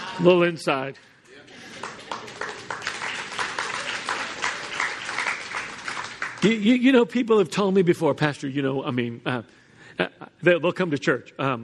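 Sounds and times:
speech: 0.2 - 1.1, 6.4 - 11.6
congregation clapping together: 1.0 - 7.2
laughter: 1.4 - 2.8.

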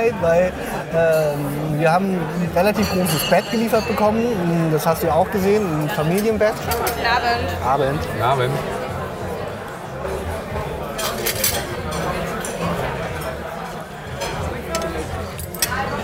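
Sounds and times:
speech: 0.0 - 8.8
murmur of restaurant chatter and voices: 0.0 - 16.0
metal cutlery clinking and rattling as it is gathered up: 2.6 - 4.2, 11.0 - 12.6, 14.2 - 16.0.

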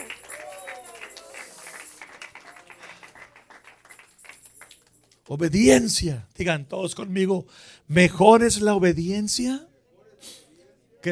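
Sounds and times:
scattered voices shouting and cheering: 0.0 - 1.8
crowd at a religious service clapping: 0.0 - 5.4
speech: 5.3 - 10.4.

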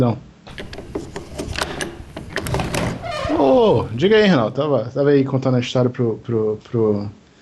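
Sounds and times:
speech: 0.0 - 0.7, 3.4 - 7.2
door being opened: 0.5 - 4.4.

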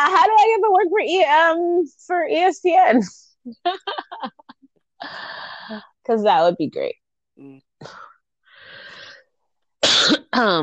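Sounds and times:
speech: 0.0 - 4.4, 5.0 - 8.1, 10.0 - 10.6
laughter: 3.6 - 4.7
person coughing from a tickle in the throat: 9.8 - 10.6.

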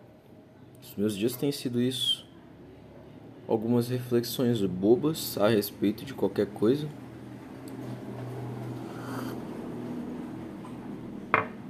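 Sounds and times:
speech: 0.8 - 2.2, 3.5 - 7.1
steady low rumble of traffic: 5.8 - 11.6
car passing: 7.2 - 11.2.

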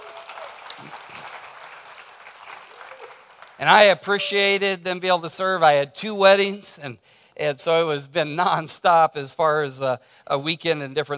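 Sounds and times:
crowd applauding: 0.0 - 4.4
speech: 0.8 - 1.4, 3.6 - 11.1.

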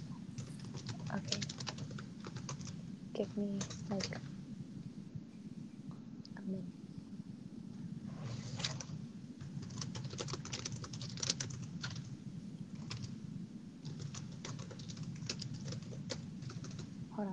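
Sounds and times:
low hum: 0.0 - 17.3
typing on a computer keyboard: 0.4 - 2.8, 3.6 - 4.2, 9.5 - 12.1, 12.8 - 13.1, 13.8 - 17.3
speech: 1.1 - 1.5, 3.2 - 4.4, 6.5 - 6.8.

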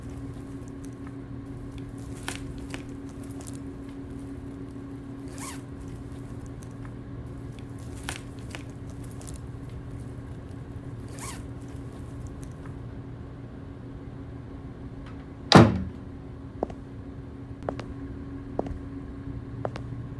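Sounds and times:
steady low hum: 0.0 - 20.1
door pushed shut with a sharp clunk: 15.1 - 16.1.

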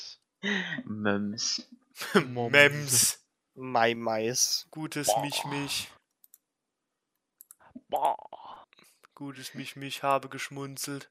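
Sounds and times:
speech: 0.4 - 6.0, 7.8 - 8.3, 9.2 - 11.0
computer mouse clicks: 6.0 - 6.4, 7.4 - 7.6.

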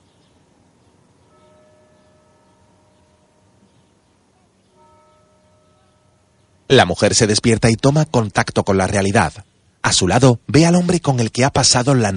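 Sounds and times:
church tower bells beside a hotel chiming the hour: 1.2 - 8.2
speech: 6.7 - 12.1.

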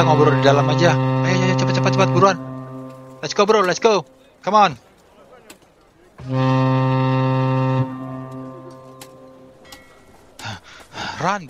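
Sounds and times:
speech: 0.0 - 2.5, 3.2 - 4.9, 6.2 - 7.9, 11.2 - 11.4
ship's horn deep blast as the ship is about to depart: 0.0 - 4.2, 6.2 - 10.4.

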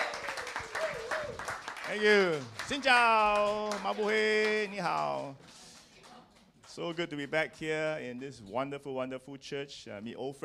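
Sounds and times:
faint voices and cheers: 0.0 - 2.8
crowd in a church applauding to welcome a pastor: 0.0 - 8.0
speech: 1.9 - 5.6, 6.8 - 10.4.

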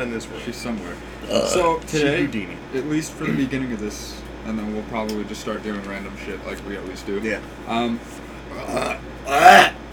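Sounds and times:
speech: 0.0 - 9.7
person burping: 1.3 - 1.6, 8.5 - 9.8.

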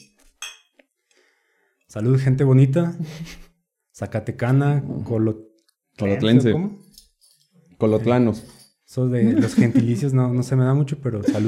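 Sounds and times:
glasses clinking in a toast: 0.4 - 0.7, 6.8 - 10.0
speech: 1.9 - 6.8, 7.8 - 11.4
laughter: 9.2 - 10.4, 11.1 - 11.4.

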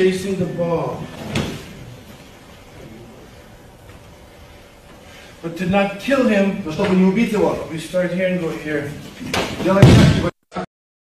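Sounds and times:
speech: 0.0 - 1.4, 5.4 - 10.3
body slammed onto a mat: 9.3 - 10.3.

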